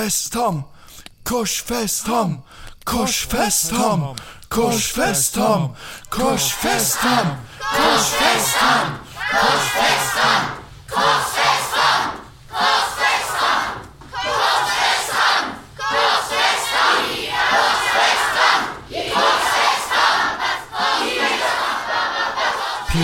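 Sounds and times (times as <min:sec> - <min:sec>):
speech: 0:00.0 - 0:11.3
large crowd shouting and chanting angrily: 0:06.1 - 0:23.0.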